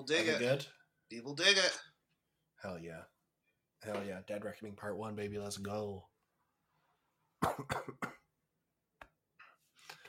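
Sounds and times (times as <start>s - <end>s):
speech: 0.0s - 1.9s, 2.6s - 3.1s, 3.8s - 6.1s, 7.4s - 8.2s
person coughing: 7.4s - 8.3s.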